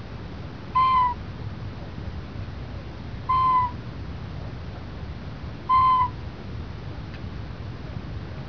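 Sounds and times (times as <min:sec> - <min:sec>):
macuco calling: 0:00.8 - 0:01.2, 0:03.3 - 0:03.8, 0:05.7 - 0:06.2.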